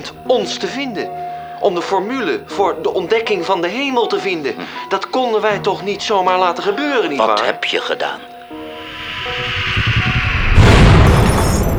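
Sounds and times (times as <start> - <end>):
speech: 0.0 - 8.3
low steady tones: 0.0 - 11.7
heavy rumbling roar of meteorite impact: 8.7 - 11.7
meteorite impact explosion boom: 8.7 - 11.7.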